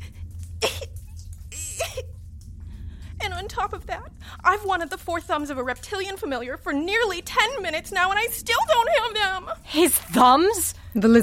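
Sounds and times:
steady low hum: 0.0 - 11.2
person coughing: 0.6 - 1.0
speech: 3.3 - 11.2.

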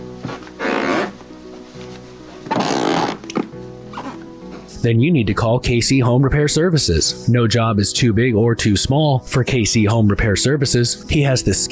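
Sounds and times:
squeaky floorboards creaking: 0.2 - 4.7
speech: 4.8 - 11.7.

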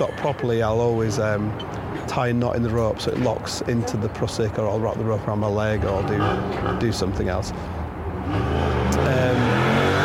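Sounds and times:
speech: 0.0 - 9.2
motorbike engine revving: 8.2 - 10.0.

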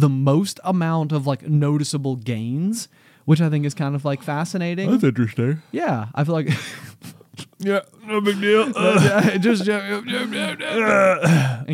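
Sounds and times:
speech: 0.0 - 11.7
laughter: 8.1 - 11.4
man stretching and flexing letting out a yawning groan: 8.4 - 9.4, 10.0 - 11.7.

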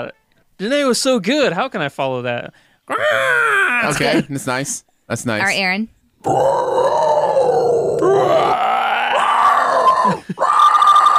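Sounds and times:
speech: 0.0 - 7.0, 8.2 - 8.6
person doing a growling roar imitating a dinosaur: 2.9 - 3.9, 6.2 - 11.1.

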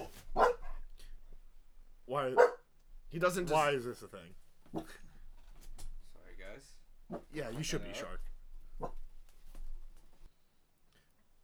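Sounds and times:
dog barking: 0.0 - 1.2, 2.3 - 2.7, 4.7 - 5.3, 7.0 - 9.1
speech: 2.2 - 2.5, 3.1 - 5.0, 6.6 - 8.2.

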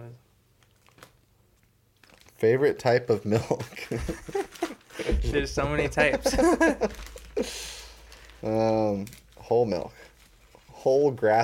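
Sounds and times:
speech: 2.4 - 7.7, 8.4 - 10.0, 10.8 - 11.4
laughter: 3.6 - 7.7
papery rustle of a question card drawn from a deck: 4.1 - 5.0, 6.3 - 10.9.

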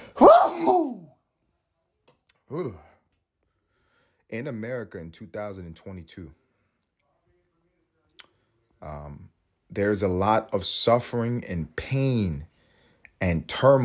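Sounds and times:
loud sneeze: 0.0 - 1.1
person murmuring and clearing throat: 2.5 - 2.9
speech: 2.5 - 2.9, 4.3 - 6.4, 8.8 - 12.5, 13.2 - 13.8.

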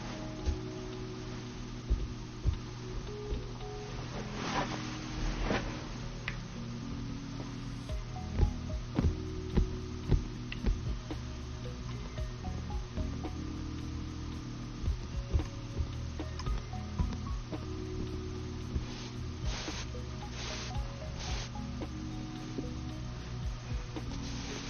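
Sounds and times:
steady low hum: 0.0 - 24.6
soft brushing and rubbing of makeup being applied: 4.1 - 6.1, 18.7 - 21.7, 24.0 - 24.6.

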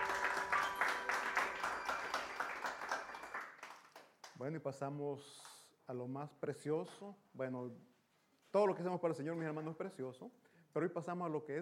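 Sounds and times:
audience applauding: 0.0 - 4.3
speech: 4.4 - 11.6.

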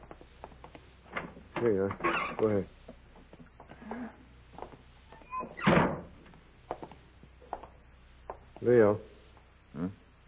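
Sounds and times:
side door creaking: 1.6 - 2.5, 5.1 - 6.2
speech: 1.6 - 2.8, 8.7 - 9.1
side door thudding: 5.3 - 6.2.

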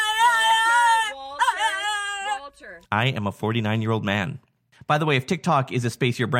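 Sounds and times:
French bulldog howling: 0.0 - 2.7
speech: 2.8 - 6.3.

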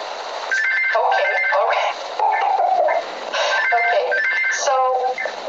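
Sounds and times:
telephone ringing with a warbling electronic tone: 0.5 - 2.8, 3.4 - 5.3.

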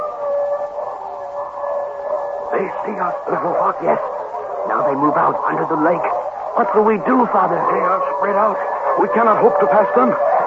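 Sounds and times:
wolves howling: 0.0 - 10.4
speech: 2.6 - 4.1, 4.7 - 10.4.

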